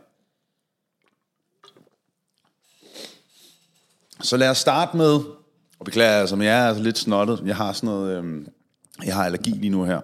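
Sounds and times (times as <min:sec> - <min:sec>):
person sipping a drink: 0:00.8 - 0:04.1
gulp of a drink: 0:01.0 - 0:03.2
speech: 0:04.2 - 0:10.0.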